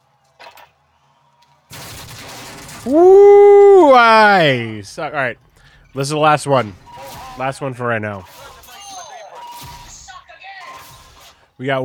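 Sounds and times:
quiet game ambience: 0.0s - 11.8s
gunfire from a gun in a video game: 1.7s - 4.6s, 6.6s - 11.5s
speech: 2.8s - 3.3s, 3.9s - 6.8s, 7.4s - 8.3s, 11.6s - 11.8s.

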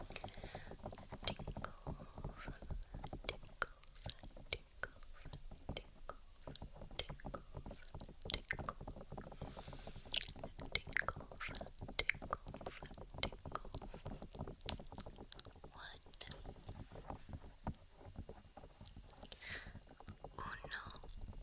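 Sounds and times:
dry ear tapping: 0.0s - 21.4s.

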